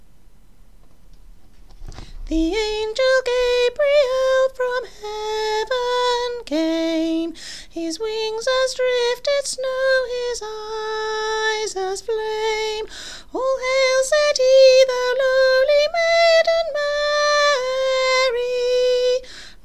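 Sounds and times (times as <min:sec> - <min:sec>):
soprano singing in a Christmas choir: 0:02.3 - 0:19.3.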